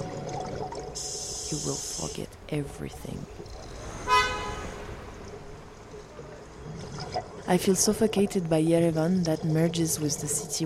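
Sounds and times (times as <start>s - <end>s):
steady city traffic noise: 1.2s - 6.7s
speech: 1.5s - 3.6s, 7.5s - 10.6s
short car horn toot in city traffic: 4.0s - 5.0s.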